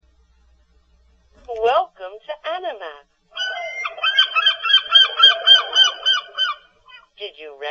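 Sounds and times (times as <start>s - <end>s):
speech: 1.6s - 3.1s
seagull harsh nasal cries: 3.4s - 7.0s.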